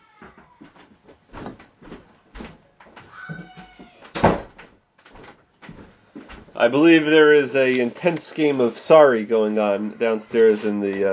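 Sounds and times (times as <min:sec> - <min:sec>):
door pushed shut with a firm loud thud: 0:03.3 - 0:04.7
speech: 0:06.6 - 0:11.1.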